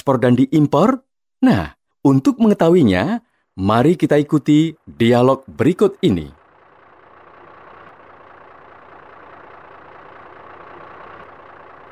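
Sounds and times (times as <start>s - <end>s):
speech: 0.0s - 6.4s
truck engine idling: 3.3s - 11.8s.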